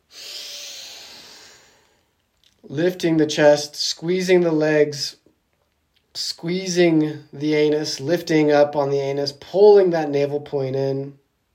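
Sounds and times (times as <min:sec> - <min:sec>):
deep inhale before a breath hold in guided breathwork: 0:00.0 - 0:02.1
speech: 0:02.7 - 0:05.2, 0:06.2 - 0:11.2.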